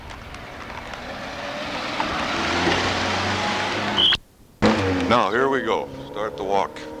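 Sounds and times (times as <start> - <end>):
pushcart full of paper and junk rolling over pavement: 0.0 - 3.0
busy street noise: 0.0 - 6.9
speech: 5.1 - 6.9.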